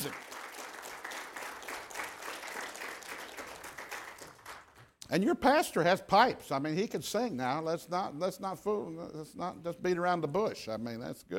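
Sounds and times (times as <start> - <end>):
speech: 0.0 - 0.2, 5.1 - 11.3
audience applauding the band: 0.0 - 5.0.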